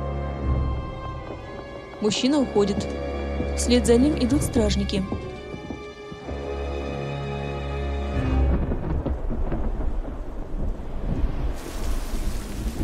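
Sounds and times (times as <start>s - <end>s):
speech: 2.0s - 5.3s
heavy rain outside a cave: 5.4s - 12.8s
thunder outside a cave: 8.2s - 12.8s.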